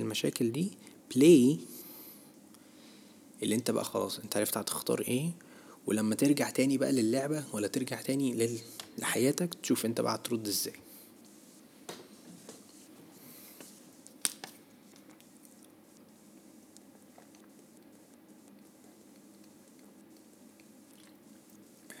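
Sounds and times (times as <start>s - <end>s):
low steady room hum: 0.0s - 21.9s
speech: 0.1s - 1.8s, 3.4s - 10.8s
person drinking water: 20.6s - 21.9s.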